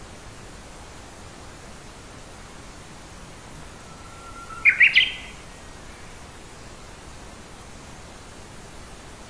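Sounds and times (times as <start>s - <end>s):
faint background hiss: 0.0s - 9.2s
Japanese bush warbler song: 3.8s - 5.4s.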